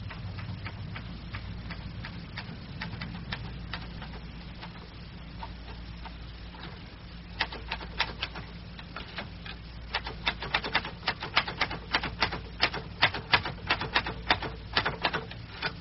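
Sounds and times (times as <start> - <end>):
low hum: 0.0 - 15.7
typewriter keys clacking: 7.4 - 9.3, 9.9 - 15.7.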